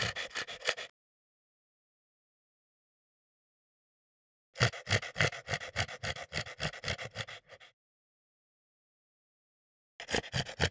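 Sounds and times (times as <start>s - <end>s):
French Bulldog gasping in quick raspy breaths: 0.0s - 0.9s, 4.6s - 7.7s, 10.0s - 10.7s.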